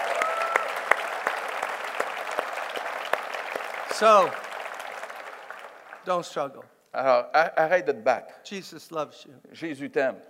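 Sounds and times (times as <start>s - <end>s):
roar of applause: 0.0s - 6.1s
congregation clapping during a church service: 0.0s - 6.5s
speech: 4.0s - 4.4s, 6.0s - 10.2s.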